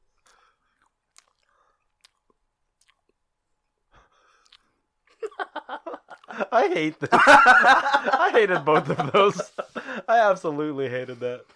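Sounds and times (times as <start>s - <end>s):
soft breaths: 0.0s - 2.0s, 3.9s - 4.9s, 9.4s - 10.1s
chewing and biting on empanadas: 0.0s - 3.6s, 4.3s - 4.8s, 6.1s - 6.3s
faint wet mouth sounds: 0.1s - 3.3s, 4.3s - 4.8s
laughter: 5.2s - 10.3s
speech: 6.5s - 11.5s.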